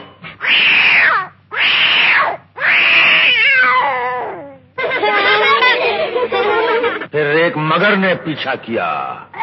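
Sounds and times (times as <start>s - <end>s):
kitten meowing: 0.4s - 4.4s
laughter: 4.8s - 7.1s
speech: 7.8s - 9.3s.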